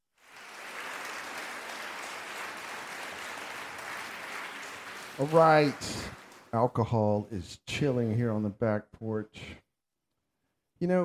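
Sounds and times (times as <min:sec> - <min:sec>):
crowd applause: 0:00.1 - 0:06.6
speech: 0:05.2 - 0:09.6, 0:10.8 - 0:11.0.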